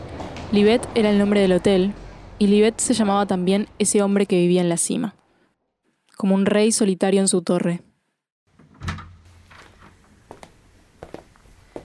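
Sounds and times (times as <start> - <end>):
speech: 0.5 - 5.2, 6.2 - 7.9
door pushed open with a soft thud: 8.6 - 10.0.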